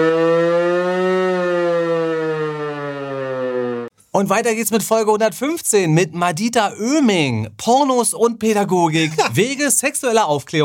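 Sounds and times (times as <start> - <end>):
civil defense siren wailing: 0.0 - 3.9
speech: 4.2 - 10.6.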